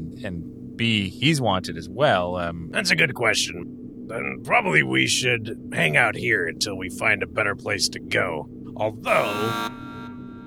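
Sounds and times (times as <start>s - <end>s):
speech: 0.2s - 9.9s
electronic countdown alarm buzz signalling trash venting into space: 9.0s - 10.4s.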